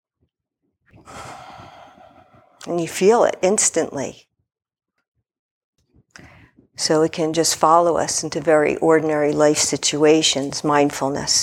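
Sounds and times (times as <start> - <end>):
person taking a deep breath: 1.0 - 2.6
speech: 2.6 - 4.3, 6.8 - 11.4.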